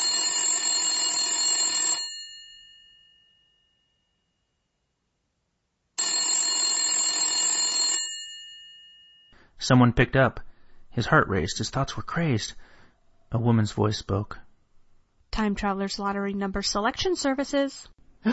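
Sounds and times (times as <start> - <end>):
distant telephone bell ringing: 0.0 - 4.3, 6.0 - 9.4
speech: 9.6 - 12.7, 13.3 - 14.4, 15.4 - 18.3.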